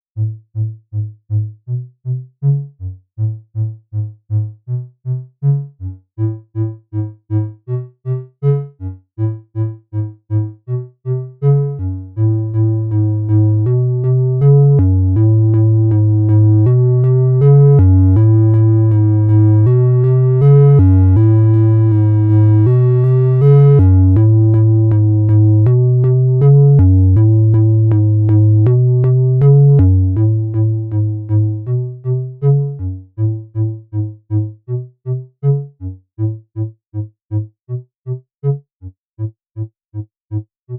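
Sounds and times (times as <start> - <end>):
slow synthesizer triangle wave bass with VCA: 0.2 - 38.2.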